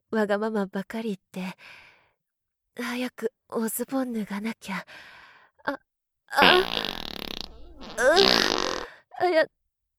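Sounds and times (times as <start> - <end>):
speech: 0.1 - 1.9, 2.8 - 6.9, 8.0 - 9.6
loud drawn-out farts: 6.4 - 8.9.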